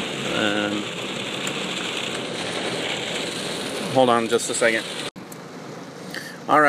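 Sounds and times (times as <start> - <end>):
heavy rain on a moving car: 0.0 - 6.6
speech: 3.9 - 5.0, 6.5 - 6.6.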